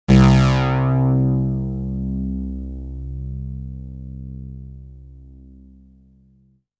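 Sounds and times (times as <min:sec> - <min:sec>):
synth lead: 0:00.1 - 0:05.5.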